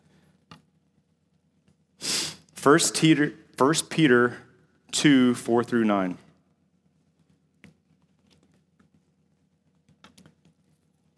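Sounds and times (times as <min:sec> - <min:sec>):
stuffy runny-nosed sniffling: 0:02.0 - 0:02.6
speech: 0:02.6 - 0:06.2.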